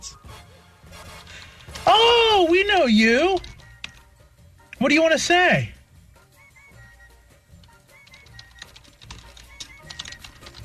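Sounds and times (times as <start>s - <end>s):
typing on a keyboard: 1.4s - 4.0s, 7.6s - 10.6s
speech: 2.4s - 3.5s, 4.8s - 5.8s.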